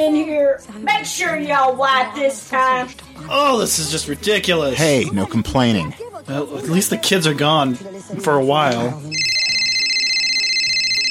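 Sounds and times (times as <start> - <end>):
speech: 0.0 - 9.2
phone ringing with a high electronic trill: 9.1 - 11.0.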